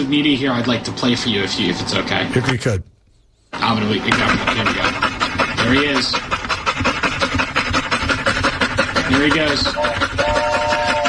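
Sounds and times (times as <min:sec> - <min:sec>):
speech: 0:00.0 - 0:02.9, 0:03.5 - 0:07.0, 0:09.1 - 0:10.5
dog panting quickly: 0:03.6 - 0:11.0.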